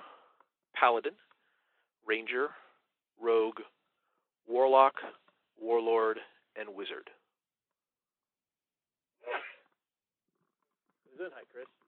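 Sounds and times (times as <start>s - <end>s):
speech: 0.8s - 1.3s, 2.0s - 2.6s, 3.2s - 3.8s, 4.5s - 7.2s, 11.2s - 11.8s
loud sneeze: 9.2s - 9.7s.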